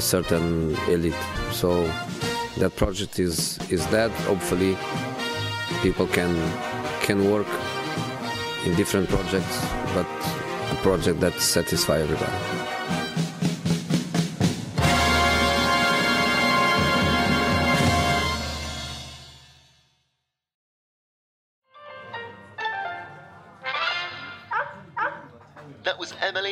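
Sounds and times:
speech: 0:00.0 - 0:12.7
music: 0:00.0 - 0:20.4, 0:21.6 - 0:25.7
puppy yipping and whimpering: 0:24.4 - 0:25.3.

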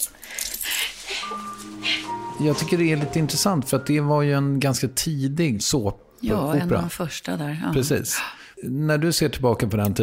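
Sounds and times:
keys jangling as they are handed over: 0:00.0 - 0:01.3
speech: 0:02.4 - 0:10.0.

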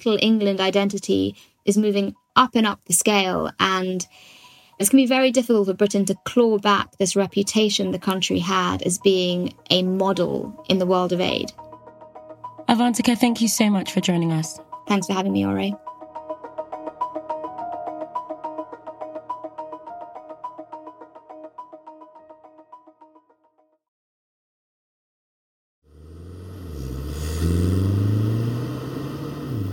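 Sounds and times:
speech: 0:00.0 - 0:11.6, 0:12.7 - 0:15.9
petrol car engine revving while accelerating: 0:25.9 - 0:29.7.

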